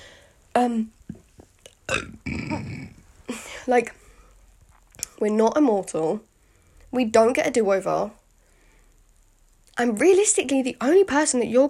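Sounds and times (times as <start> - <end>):
speech: 0.6 - 1.0, 3.7 - 4.0, 5.2 - 6.3, 6.9 - 8.2, 9.8 - 11.6
soft mouth clicks: 1.0 - 3.0, 4.7 - 5.2
loud burp with a low croaky tone: 1.8 - 3.0.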